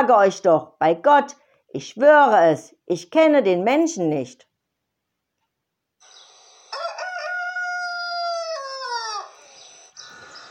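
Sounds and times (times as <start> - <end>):
speech: 0.0 - 4.5
rooster crowing: 6.1 - 9.5.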